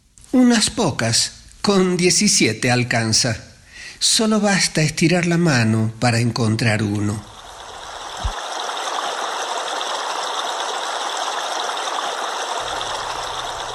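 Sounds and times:
speech: 0:00.3 - 0:07.3
flowing stream water: 0:07.3 - 0:13.7.

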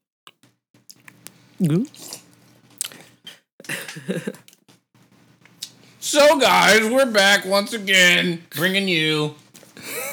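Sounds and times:
wet mouth chewing saliva and smacking: 0:00.3 - 0:03.4
speech: 0:01.6 - 0:02.2, 0:04.1 - 0:04.5, 0:06.1 - 0:09.9.

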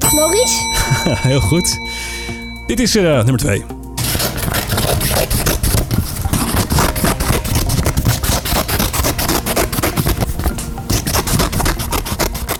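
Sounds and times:
speech: 0:00.2 - 0:03.8
laughter: 0:00.8 - 0:01.6
scissors snipping and scraping: 0:04.0 - 0:12.5.

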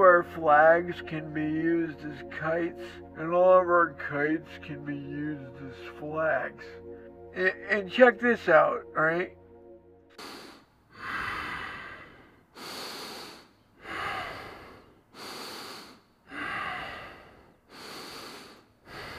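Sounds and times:
speech: 0:00.0 - 0:06.8, 0:07.4 - 0:09.4, 0:10.2 - 0:10.4
person breathing slowly and heavily while asleep: 0:10.1 - 0:19.1.

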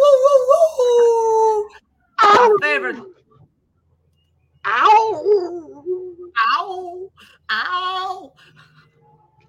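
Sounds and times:
voice imitating a wolf howling at the moon: 0:00.0 - 0:02.6, 0:04.7 - 0:08.4.

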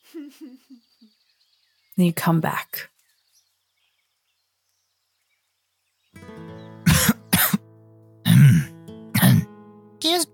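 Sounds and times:
speech: 0:00.2 - 0:01.2, 0:02.0 - 0:02.9
harsh coughing and throat clearing: 0:06.8 - 0:07.6, 0:08.2 - 0:09.5.

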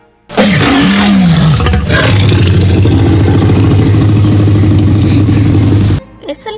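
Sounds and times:
Tyrannosaurus rex roar: 0:00.3 - 0:06.0.

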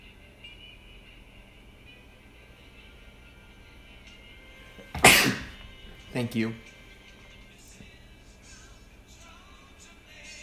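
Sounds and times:
person sneezing: 0:04.9 - 0:05.6
speech: 0:06.2 - 0:06.7.

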